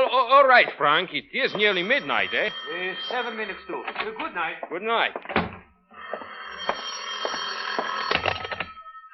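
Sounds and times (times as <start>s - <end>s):
speech: 0.3s - 5.4s
old-fashioned telephone bell ringing: 1.4s - 4.4s, 5.9s - 9.1s.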